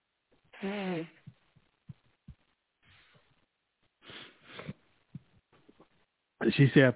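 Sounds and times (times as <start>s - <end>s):
person blowing nose: 0.6s - 1.2s, 4.0s - 4.8s
speech: 0.6s - 1.3s, 6.4s - 6.9s
faint sniffs and snuffles: 2.8s - 3.3s, 4.0s - 4.8s.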